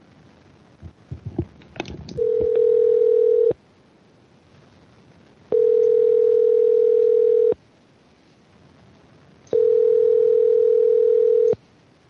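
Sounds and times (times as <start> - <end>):
loud steady telephone tone while placing a call: 2.2 - 3.6, 5.5 - 7.6, 9.5 - 11.6.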